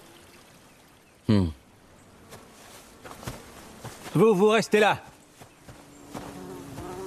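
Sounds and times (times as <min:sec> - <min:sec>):
bees buzzing: 0:00.0 - 0:07.0
speech: 0:04.2 - 0:05.1.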